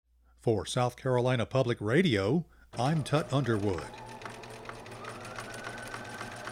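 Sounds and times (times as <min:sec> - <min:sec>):
speech: 0:00.4 - 0:04.0
sewing machine running: 0:02.8 - 0:06.5.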